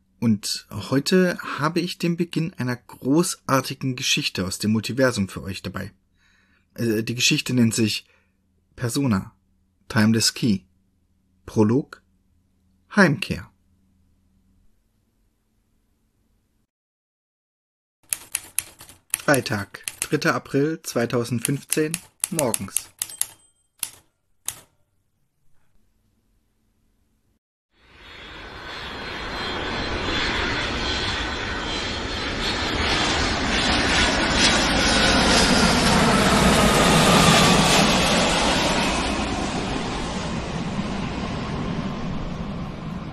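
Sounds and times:
speech: 0.2s - 6.0s, 6.8s - 8.2s, 8.8s - 10.7s, 11.5s - 12.0s, 12.9s - 13.5s, 19.3s - 22.9s
sharp clicks: 18.1s - 20.2s, 21.4s - 24.7s
airplane engine roar during landing: 27.8s - 43.1s.

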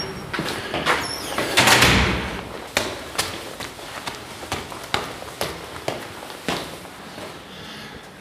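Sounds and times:
door opening with a broad rushing clatter: 0.0s - 2.4s
footstep-like clacks: 0.0s - 7.4s.

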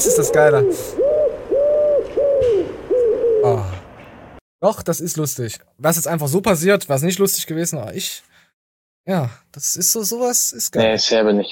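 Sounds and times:
speech: 0.0s - 1.1s, 4.6s - 8.4s, 9.0s - 11.5s
pigeon cooing: 0.0s - 3.9s.

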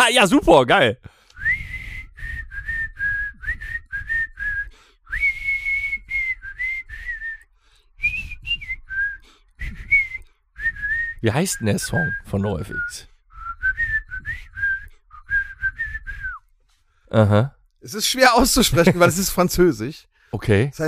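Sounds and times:
speech: 0.1s - 1.1s, 11.2s - 13.1s, 17.1s - 20.8s
person whistling a melody: 1.4s - 16.4s
laughter: 18.4s - 19.5s.

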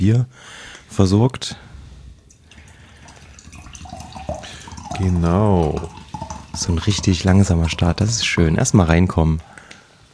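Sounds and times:
speech: 0.0s - 1.7s, 5.0s - 6.0s, 6.6s - 9.5s
water pouring into a glass: 2.2s - 8.9s.

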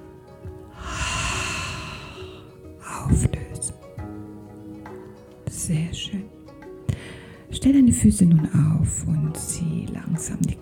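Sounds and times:
long deep in-breath during a relaxation exercise: 0.7s - 2.6s, 6.9s - 7.5s
speech: 5.7s - 6.4s, 7.6s - 10.6s.

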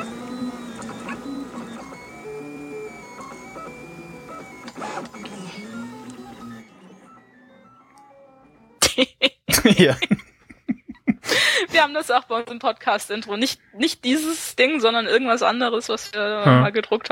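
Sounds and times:
3D printer stepper motors beeping and whistling in musical tones: 0.0s - 8.7s
laughter: 8.9s - 11.5s
speech: 9.8s - 10.2s, 11.8s - 17.1s.

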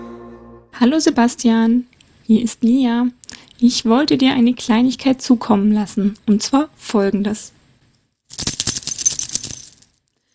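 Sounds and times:
speech: 0.8s - 7.6s
key rattling on a chain worn around the neck: 8.3s - 10.0s.

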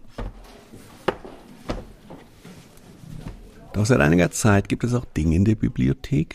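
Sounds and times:
books being set onto a wooden library shelf: 0.0s - 2.6s
speech: 3.8s - 6.3s.

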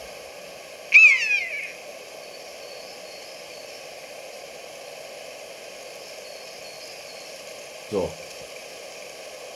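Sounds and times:
faint hiss: 0.0s - 9.5s
high whistling screech bird call from a playback recording: 0.9s - 1.8s
speech: 7.9s - 8.3s.

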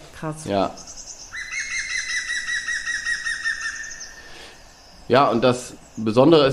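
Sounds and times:
speech: 0.2s - 1.0s, 5.1s - 6.5s
green woodpecker laughing call: 0.8s - 5.4s.

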